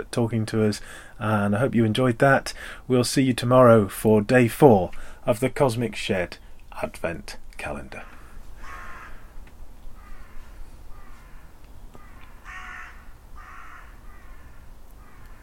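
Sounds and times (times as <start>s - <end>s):
speech: 0.0s - 8.2s
crows cawing: 8.0s - 15.4s.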